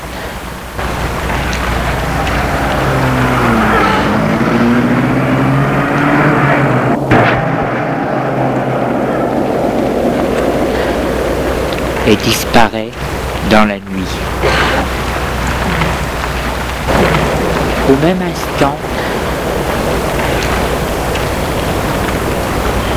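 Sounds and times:
car engine starting and revving as it pulls off: 0:00.8 - 0:12.2, 0:14.1 - 0:22.9
speech: 0:12.1 - 0:14.4, 0:17.9 - 0:19.0.

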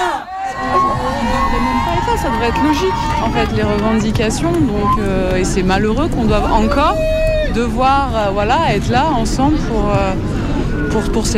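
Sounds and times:
large protest crowd shouting and cheering: 0:00.0 - 0:09.0
speech: 0:02.2 - 0:10.3, 0:10.9 - 0:11.3.

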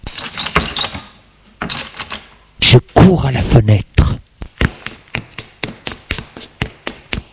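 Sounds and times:
front door creaking: 0:00.0 - 0:02.3
speech: 0:03.0 - 0:03.9.

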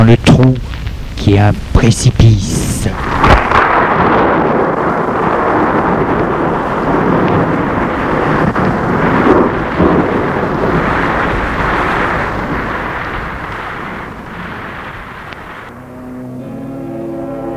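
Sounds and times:
speech: 0:00.0 - 0:03.1
rolling thunder of a storm at a castle: 0:02.5 - 0:15.9.

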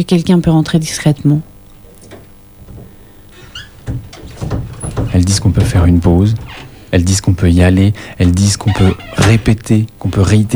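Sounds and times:
speech: 0:00.0 - 0:01.5, 0:05.2 - 0:10.5
door creaking open: 0:01.7 - 0:07.3, 0:08.2 - 0:09.7.

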